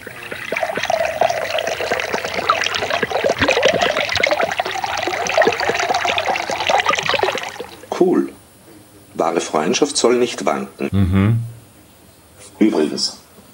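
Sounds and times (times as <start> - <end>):
soda water pouring into a glass: 0.0 - 8.0
speech: 8.0 - 8.3, 9.2 - 11.5, 12.6 - 13.2.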